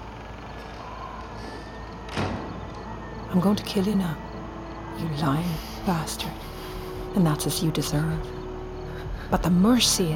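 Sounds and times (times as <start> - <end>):
door swinging shut with a muffled thud: 2.1 - 2.9
speech: 3.3 - 4.3, 5.0 - 8.4, 9.3 - 10.1.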